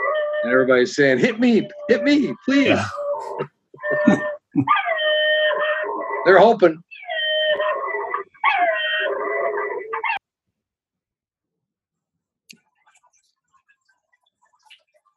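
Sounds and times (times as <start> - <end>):
speech: 0.4 - 4.8, 6.3 - 6.9
small dog yelping: 2.7 - 10.2.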